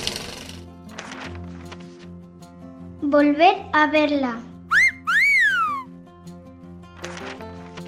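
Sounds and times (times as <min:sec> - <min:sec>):
speech: 0:03.1 - 0:04.5
station master's whistle: 0:04.7 - 0:05.9.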